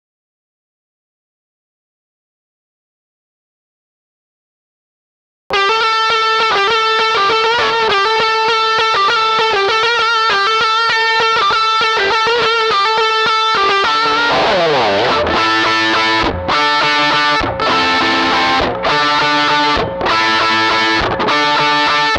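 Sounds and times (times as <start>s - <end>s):
electric guitar through studio preamp: 5.5s - 22.1s.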